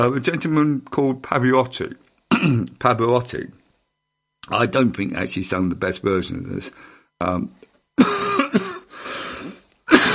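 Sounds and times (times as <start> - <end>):
speech: 0.0 - 3.6, 4.4 - 8.7
person coughing into the microphone: 2.3 - 2.7, 8.0 - 10.1
throat clearing: 2.3 - 2.8, 9.9 - 10.1.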